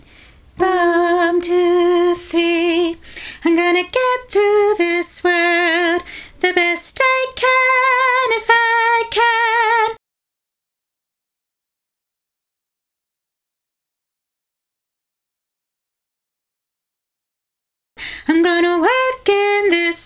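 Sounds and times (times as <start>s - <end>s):
soprano singing vocal drill: 0.6s - 10.0s, 18.0s - 20.0s.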